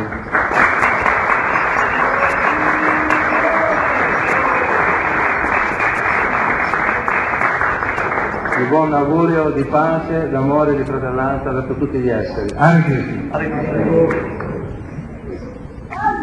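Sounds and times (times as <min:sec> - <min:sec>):
audience applause at a gathering welcoming a visiting master: 0:00.0 - 0:09.5
speech: 0:08.7 - 0:14.3.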